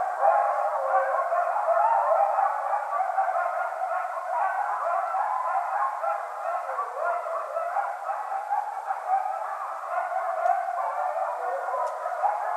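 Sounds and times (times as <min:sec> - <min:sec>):
several coyotes yipping, howling and yelping in chorus: 0:00.0 - 0:12.5
faint high clicks: 0:11.8 - 0:12.0.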